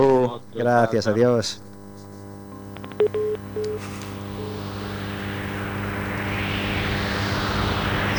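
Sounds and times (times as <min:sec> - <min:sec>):
speech: 0:00.0 - 0:01.7
steady electronic drone: 0:00.0 - 0:08.1
synthesized wind effect from an electronic album: 0:04.3 - 0:08.1.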